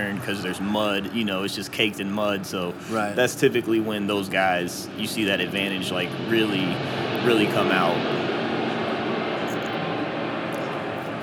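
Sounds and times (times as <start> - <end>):
speech: 0.0 - 8.3
small propeller plane droning overhead: 0.0 - 11.2.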